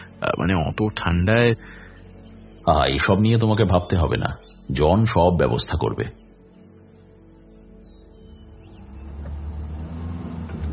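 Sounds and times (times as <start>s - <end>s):
speech: 0.2s - 1.9s, 2.6s - 6.2s
jeep driving slowly along a rough potholed road at night: 7.9s - 10.7s.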